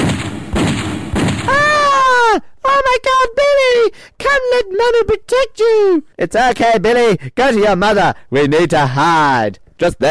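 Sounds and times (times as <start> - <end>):
sharp booming gunshots: 0.0 - 1.8
loud wavering high-pitched wail sliding downward: 1.5 - 2.4
speech: 2.9 - 10.0.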